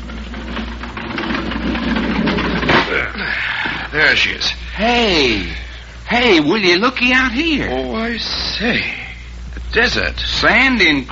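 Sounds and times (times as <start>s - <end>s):
heavy metal railroad boxcar door sliding open with a grinding rumble: 0.0s - 2.9s
speech: 4.0s - 9.0s, 9.7s - 11.1s.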